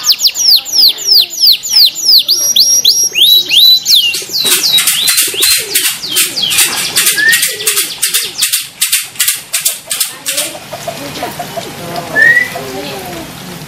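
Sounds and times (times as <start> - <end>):
small champion canary singing: 0.0 - 9.2, 12.0 - 12.9.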